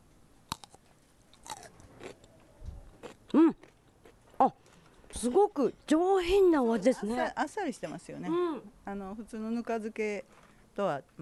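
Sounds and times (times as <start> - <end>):
biting into a tenmusu rice ball: 0.5 - 3.8
moist chewing of a tenmusu rice ball: 0.5 - 5.2
speech: 5.2 - 11.2.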